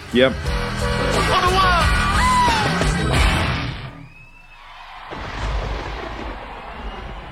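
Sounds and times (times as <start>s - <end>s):
speech: 0.1s - 1.7s
roaring crowd noise and cheering: 0.4s - 7.2s
performer shouting at end of live concert: 1.1s - 2.8s.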